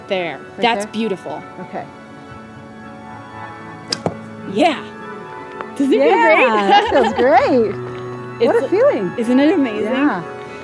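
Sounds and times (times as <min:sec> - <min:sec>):
speech: 0:00.1 - 0:02.0, 0:04.5 - 0:04.9, 0:05.8 - 0:07.8, 0:08.4 - 0:10.4
bowstring snapping as an arrow is released: 0:03.9 - 0:04.3
arrow thud: 0:03.9 - 0:04.4
laughter: 0:05.9 - 0:07.6.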